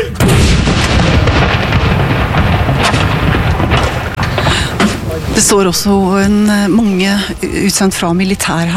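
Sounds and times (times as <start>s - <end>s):
cannon firing a gun salute: 0.1s - 5.7s
speech: 5.5s - 8.7s.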